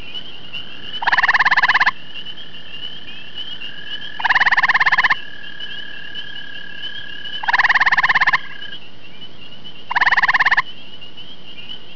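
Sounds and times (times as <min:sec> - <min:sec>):
gray tree frog: 0:00.0 - 0:11.9.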